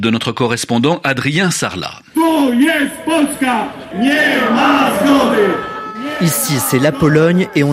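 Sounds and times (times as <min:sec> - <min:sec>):
speech: 0:00.0 - 0:07.7
crowd of protesters chanting in unison at an outdoor rally in Warsaw: 0:02.2 - 0:07.7.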